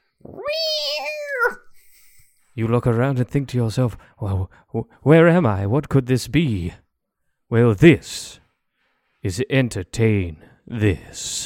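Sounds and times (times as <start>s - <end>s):
stray cat yowling: 0.2s - 1.7s
speech: 2.6s - 6.8s, 7.5s - 8.4s, 9.2s - 11.4s.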